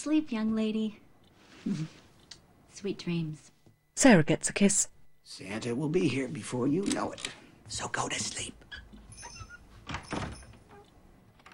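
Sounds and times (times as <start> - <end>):
speech: 0.0 - 1.0, 1.6 - 2.0, 2.8 - 8.6
bedroom door closing with a soft swish and thud: 9.0 - 10.7.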